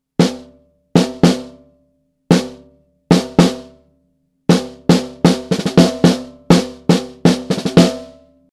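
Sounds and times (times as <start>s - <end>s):
snare drum: 0.2s - 1.6s, 2.3s - 3.8s, 4.5s - 8.2s.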